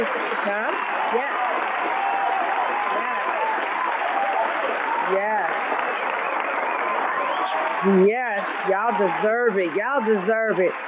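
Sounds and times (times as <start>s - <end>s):
applause: 0.0s - 10.8s
crowd voices and cheers: 0.0s - 10.8s
speech: 9.0s - 10.8s.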